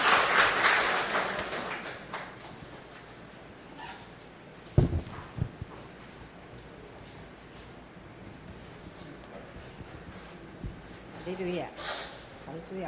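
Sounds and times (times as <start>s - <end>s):
crowd applauding: 0.0s - 2.8s
speech: 11.3s - 12.0s, 12.6s - 12.8s.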